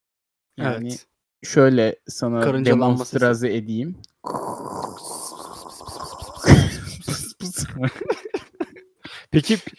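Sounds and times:
speech: 0.6 - 4.8, 7.4 - 8.4, 9.3 - 9.7
person imitating white noise with their mouth: 4.2 - 7.6
laughter: 6.3 - 8.8.

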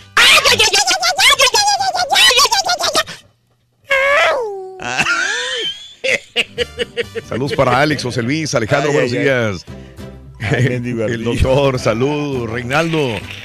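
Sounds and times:
pitch-altered sped-up squeaky Apache war-cry yell: 0.2 - 2.9
speech: 0.5 - 0.8, 7.2 - 9.8, 10.5 - 13.4
laughter: 4.9 - 8.1.

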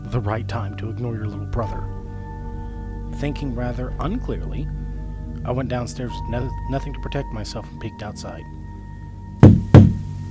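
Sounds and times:
speech: 0.1 - 2.0, 3.2 - 4.8, 5.4 - 8.6
firm knocks on a wooden door: 9.4 - 10.1.

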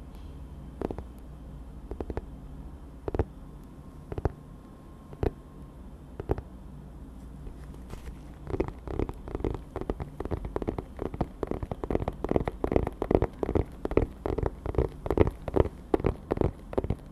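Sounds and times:
low steady hum: 0.0 - 17.1
dry tapping on dark objects: 8.5 - 17.1.

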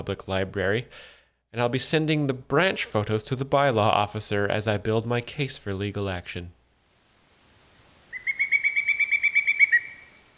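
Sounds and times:
speech: 0.0 - 6.6
pileated woodpecker call: 8.1 - 10.2.

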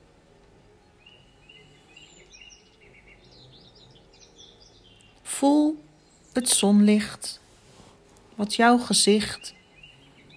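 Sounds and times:
soft continuous low hum: 0.0 - 10.3
birds singing and chirping in an outdoor chorus: 0.6 - 7.4, 8.4 - 10.3
speech: 5.4 - 5.8, 6.4 - 7.4, 8.4 - 9.6.

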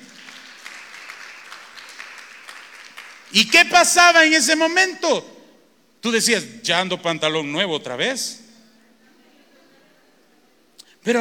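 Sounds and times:
crowd clapping: 0.0 - 3.8
speech: 3.3 - 5.3, 6.0 - 8.4.

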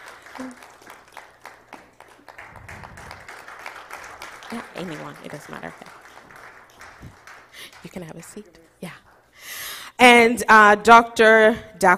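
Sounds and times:
crowd applauding: 0.0 - 9.3
speech: 0.4 - 0.6, 4.5 - 5.8, 7.9 - 9.0, 10.0 - 11.9.

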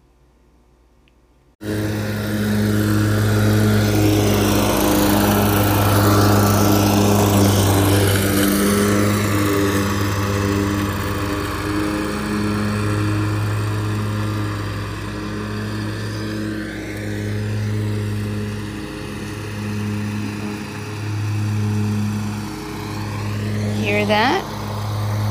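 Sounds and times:
riding lawnmower engine droning: 1.6 - 25.2.

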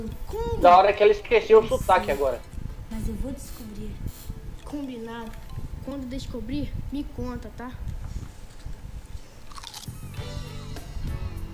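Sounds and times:
speech: 0.0 - 3.6, 4.7 - 8.0
boy chewing food with wet crunchy bites: 9.4 - 10.1.

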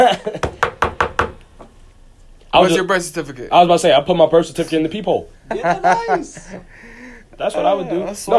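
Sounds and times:
speech: 0.1 - 0.6, 2.5 - 8.3
firm knocking on a door: 0.4 - 1.4
laughter: 5.5 - 6.8.

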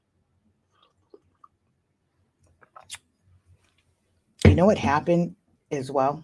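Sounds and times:
short slurp and swallow: 0.6 - 1.8, 2.4 - 3.1
sipping hot cocoa from a mug: 0.7 - 1.6, 2.5 - 3.1
faint lip and mouth clicks: 0.7 - 1.7, 2.4 - 3.1
speech: 4.4 - 6.2.

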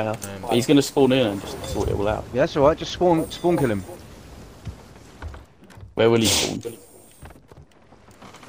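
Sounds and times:
speech: 0.0 - 4.0, 6.0 - 6.9
video game boat creaking: 0.0 - 8.4
video game stormy wind roaring over the sea: 0.6 - 5.4.

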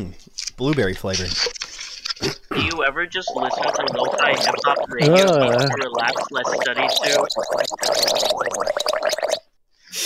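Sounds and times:
speech: 0.0 - 1.6, 2.2 - 8.8
person gargling liquid: 2.2 - 9.5.

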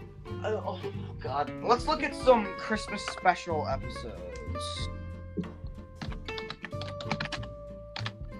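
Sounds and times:
speech: 0.5 - 5.5
aggressive computer keyboard typing: 5.4 - 8.1.

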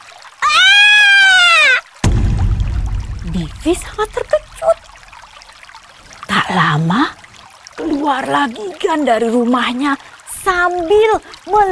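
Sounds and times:
loud piercing scream: 0.4 - 1.8
rough splashing rumble: 2.0 - 5.6
speech: 3.3 - 4.8, 6.5 - 7.1, 8.1 - 11.7.

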